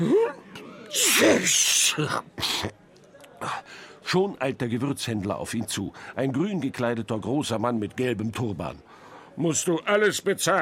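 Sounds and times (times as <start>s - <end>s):
person sneezing: 0.0s - 2.8s
speech: 0.0s - 2.8s, 3.4s - 10.6s
breathy gasps between sneezes: 3.4s - 4.0s, 8.8s - 9.4s.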